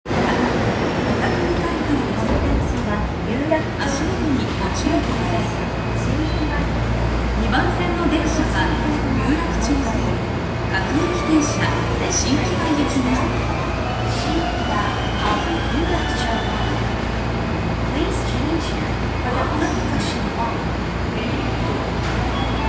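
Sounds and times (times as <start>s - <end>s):
Yurakucho Line train at Kotake-mukaihara east: 0.0s - 22.6s.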